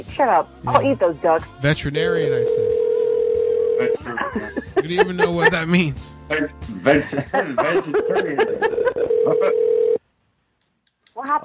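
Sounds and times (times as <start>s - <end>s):
speech: 0.0s - 2.7s, 3.8s - 9.7s
telephone line tone while waiting for an answer: 2.4s - 4.0s, 8.8s - 10.0s
people talking and laughing: 3.8s - 9.6s.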